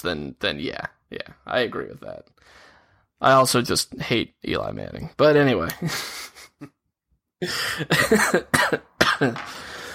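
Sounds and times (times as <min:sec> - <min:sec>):
speech: 0:00.0 - 0:06.8, 0:07.4 - 0:09.7
person coughing harshly: 0:07.4 - 0:09.8.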